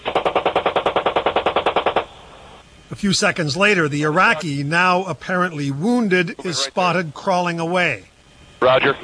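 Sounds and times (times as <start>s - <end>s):
helicopter gunner's machine gun firing at a truck: 0.0s - 2.1s
speech: 3.0s - 9.0s.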